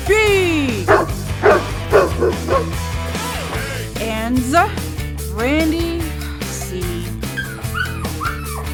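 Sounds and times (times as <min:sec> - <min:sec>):
low sustained musical drone: 0:00.0 - 0:07.8
dogs barking: 0:00.7 - 0:03.6, 0:07.2 - 0:08.7.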